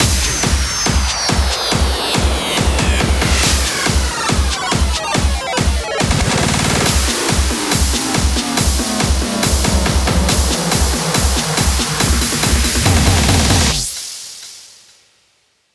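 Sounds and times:
hands up and trance drum fills: 0.0s - 14.9s.

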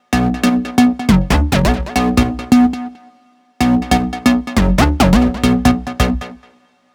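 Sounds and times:
square wave bassline in B minor: 0.2s - 2.8s, 3.6s - 6.4s.

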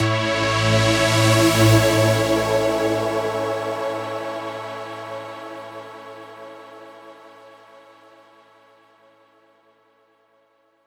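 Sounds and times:
huge synth pad fill in B minor: 0.0s - 7.6s.

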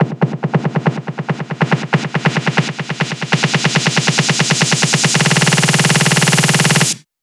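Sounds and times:
snare drum beat at 140 BPM: 0.0s - 7.0s.

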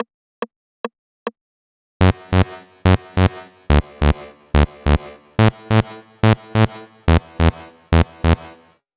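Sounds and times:
bass chorus: 2.0s - 8.6s.

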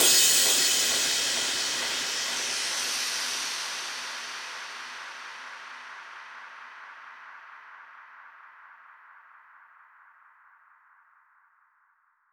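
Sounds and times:
drum crash cymbal: 0.0s - 7.5s.

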